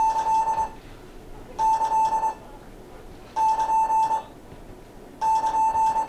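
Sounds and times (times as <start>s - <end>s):
Morse code end of work plus sign beeping tone: 0.0s - 0.8s, 1.6s - 2.5s, 3.4s - 4.3s, 5.2s - 6.0s.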